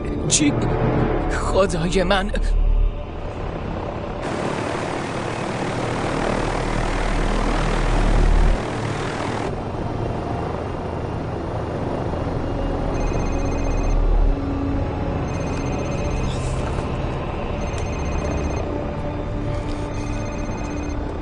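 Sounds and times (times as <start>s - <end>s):
speech: 0.3s - 2.6s
unmanned propeller drone buzzing overhead: 2.4s - 21.2s.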